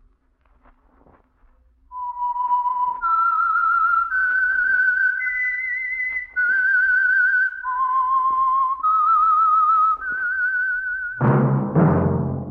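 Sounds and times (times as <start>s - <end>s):
lone whistler whistling a slow eerie melody: 1.9s - 11.7s
bright ringing orchestral chords: 11.2s - 12.4s.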